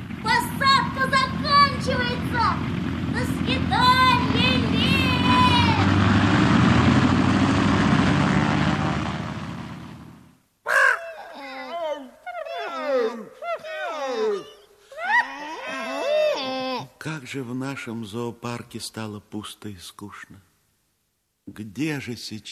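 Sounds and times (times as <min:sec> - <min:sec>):
propeller airplane engines running before takeoff: 0:00.0 - 0:10.4
warbling squawking animal-like calls: 0:10.7 - 0:16.1
speech: 0:17.3 - 0:20.5, 0:21.5 - 0:22.5.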